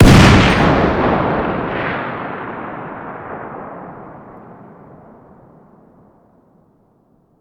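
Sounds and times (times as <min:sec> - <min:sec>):
distant 50 BMG rifle firing outdoors: 0:00.0 - 0:03.2.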